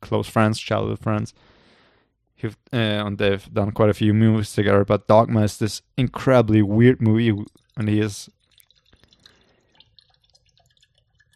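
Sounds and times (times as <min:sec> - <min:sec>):
speech: 0:00.1 - 0:01.6, 0:02.4 - 0:08.4
liquid pouring into a glass: 0:06.7 - 0:11.3.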